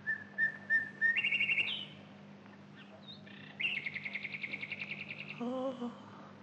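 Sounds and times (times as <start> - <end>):
nightingale singing: 0.0 - 2.0, 2.7 - 5.6
low steady hum: 0.0 - 6.4
speech: 5.4 - 6.1.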